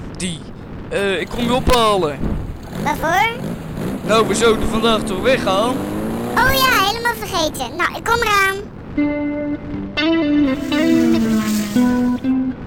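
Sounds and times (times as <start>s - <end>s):
speech: 0.2s - 3.5s, 4.1s - 9.2s, 10.0s - 12.4s
expensive car driving up and shifting gears: 1.3s - 7.0s.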